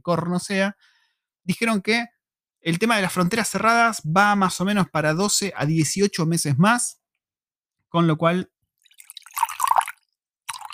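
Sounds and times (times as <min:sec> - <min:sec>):
speech: 0:00.0 - 0:07.0, 0:07.9 - 0:08.6
water being poured: 0:08.8 - 0:10.7.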